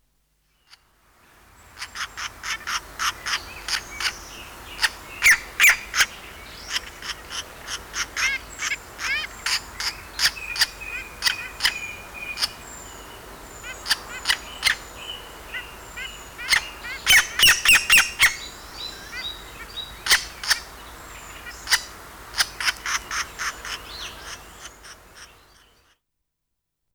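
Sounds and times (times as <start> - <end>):
fledgling green woodpeckers: 1.5 - 25.9.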